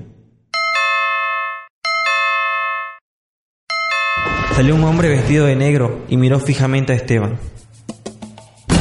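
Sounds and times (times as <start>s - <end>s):
doorbell two-tone ding-dong chime: 0.6s - 3.0s, 3.7s - 4.6s
speech: 4.6s - 7.6s.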